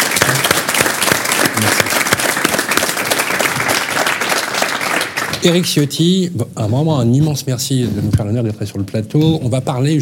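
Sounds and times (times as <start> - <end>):
crowd applauding: 0.0 - 5.8
speech: 5.4 - 10.0.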